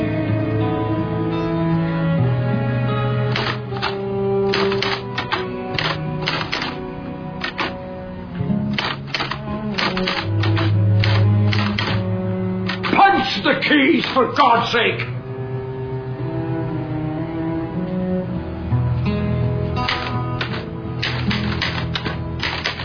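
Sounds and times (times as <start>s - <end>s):
music: 0.0s - 22.8s
typewriter keys clacking: 3.3s - 6.8s, 7.4s - 7.8s, 8.7s - 12.0s, 12.7s - 13.1s, 14.0s - 14.4s, 19.8s - 22.8s
speech: 14.2s - 15.2s.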